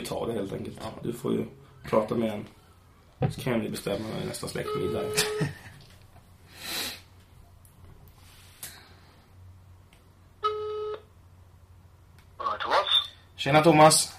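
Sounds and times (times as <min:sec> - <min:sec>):
speech: 0:00.0 - 0:02.6, 0:03.2 - 0:05.7, 0:13.4 - 0:14.1
short electronic telephone tone: 0:10.4 - 0:11.0.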